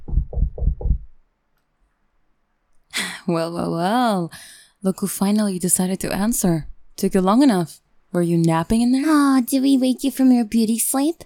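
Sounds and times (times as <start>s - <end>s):
heavy knocks on a wooden door: 0.0s - 1.1s
speech: 3.3s - 11.2s.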